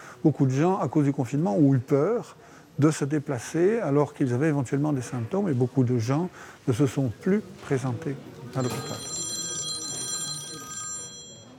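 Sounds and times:
speech: 0.2s - 9.1s
telephone ringing: 8.4s - 11.5s.

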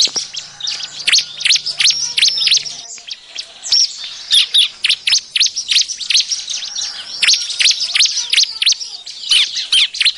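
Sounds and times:
bar-winged prinia lure call with high swooping chirps: 0.0s - 10.1s.

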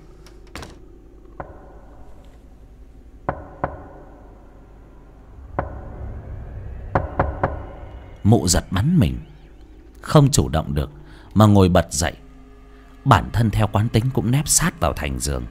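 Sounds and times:
faint low rumble: 0.0s - 13.9s
knocking on a room door: 1.4s - 1.9s, 3.2s - 4.3s, 7.0s - 8.0s
speech: 8.2s - 9.3s, 10.0s - 12.2s, 13.0s - 15.4s.

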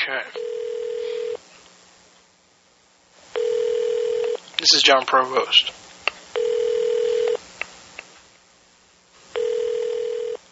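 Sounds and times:
speech: 0.0s - 0.6s, 4.6s - 5.8s
electronic ringback tone from an unanswered phone call to a hotel: 0.4s - 1.4s, 3.4s - 4.4s, 6.4s - 7.4s, 9.4s - 10.4s.

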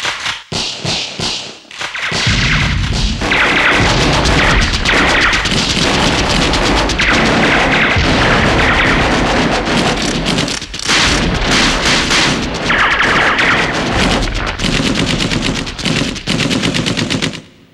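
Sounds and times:
rapid pistol gunshots in long bursts: 0.5s - 17.6s.

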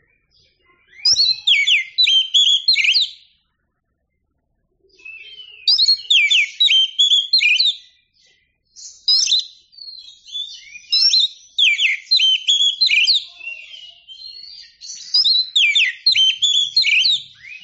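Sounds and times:
Oriental magpie-robin singing: 0.0s - 3.4s, 4.9s - 17.6s.

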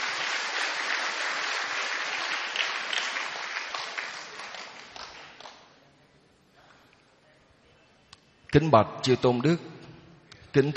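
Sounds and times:
audience applause at a Buddhist ordination ceremony: 0.0s - 5.7s
speech: 8.6s - 9.7s, 10.6s - 10.7s.

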